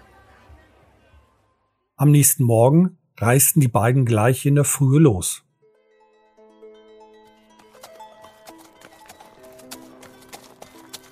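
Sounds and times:
speech: 2.0 - 5.5
sustained tonal music: 5.6 - 11.1
horse hooves clip-clopping: 7.5 - 11.1.

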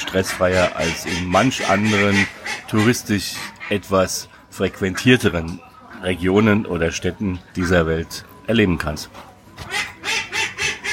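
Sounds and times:
ducks being fed at a small beach quacking: 0.0 - 6.4, 7.6 - 8.0, 9.6 - 10.9
speech: 0.1 - 9.8.

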